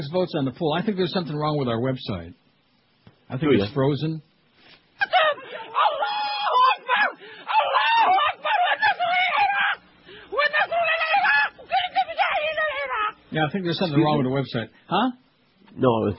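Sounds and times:
speech: 0.0 - 2.4, 3.3 - 4.3, 13.3 - 16.1
woman in a film clip wailing and screaming in grief: 5.0 - 13.2.

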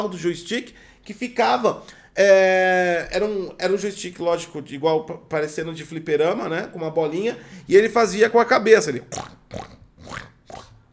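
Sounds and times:
speech: 0.0 - 10.6
person imitating a pig grunting: 9.0 - 10.9.

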